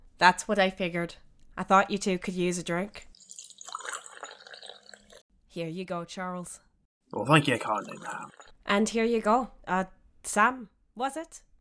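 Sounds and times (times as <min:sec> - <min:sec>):
speech: 0:00.2 - 0:03.1, 0:05.6 - 0:11.5
water pouring from a bucket: 0:03.2 - 0:05.2, 0:07.4 - 0:08.5.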